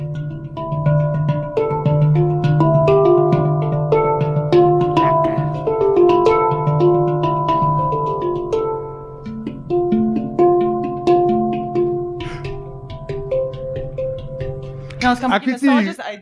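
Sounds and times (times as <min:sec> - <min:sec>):
handpan steel drum played solo: 0:00.0 - 0:15.9
speech: 0:15.1 - 0:16.1.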